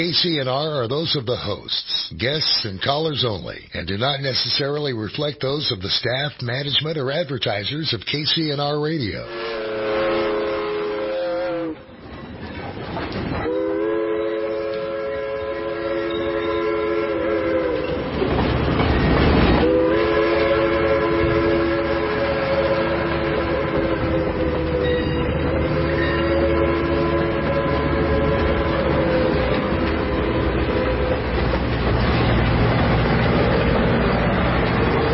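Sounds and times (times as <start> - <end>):
speech: 0.0 - 9.7
train rumbling: 0.0 - 35.1
train horn blaring in long sustained blasts: 9.2 - 11.9, 13.4 - 18.1, 19.6 - 31.5.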